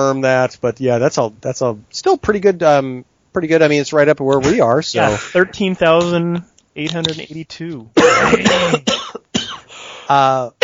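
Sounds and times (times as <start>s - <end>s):
speech: 0.0s - 9.0s, 10.1s - 10.6s
short voiced vocal sounds: 4.4s - 6.1s
person coughing in a sudden coughing fit: 8.0s - 9.7s.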